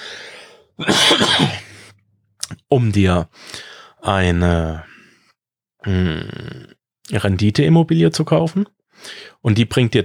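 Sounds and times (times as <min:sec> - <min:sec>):
speech: 0:00.8 - 0:01.6, 0:02.7 - 0:04.9, 0:05.8 - 0:10.0
person coughing: 0:00.8 - 0:02.0.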